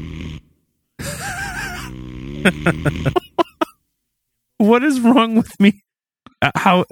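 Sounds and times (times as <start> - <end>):
loud rasping snoring with sharp snorting bursts: 0.0 - 3.2
laughter: 1.0 - 3.8
speech: 2.4 - 3.2, 4.6 - 5.8, 6.4 - 6.9.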